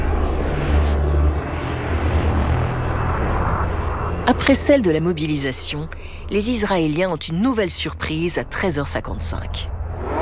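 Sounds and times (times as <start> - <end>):
military aircraft flying over cities in Israel on Yom Kippur: 0.0 - 5.2
speech: 4.3 - 9.7.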